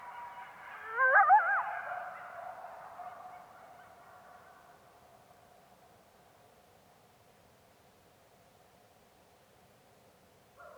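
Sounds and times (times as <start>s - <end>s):
coyote howling in Yellowstone: 0.8s - 1.8s.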